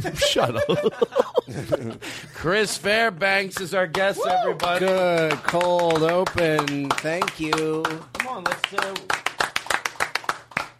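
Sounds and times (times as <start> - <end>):
laughter: 0.0 - 2.9
speech: 0.0 - 9.2
studio audience hand clapping for a guest: 3.5 - 10.7.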